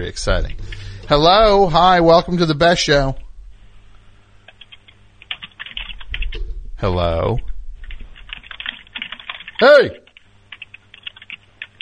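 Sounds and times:
speech: 0:00.0 - 0:03.2, 0:06.8 - 0:07.5, 0:09.6 - 0:10.0
keyboard typing: 0:04.4 - 0:06.5, 0:07.8 - 0:11.7
person calling out loudly: 0:09.6 - 0:10.1.

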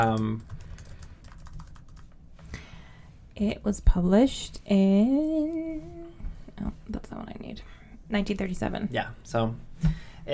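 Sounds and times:
speech: 0:00.0 - 0:00.5, 0:03.4 - 0:06.0, 0:06.6 - 0:10.3
typing on a computer keyboard: 0:00.0 - 0:02.2.

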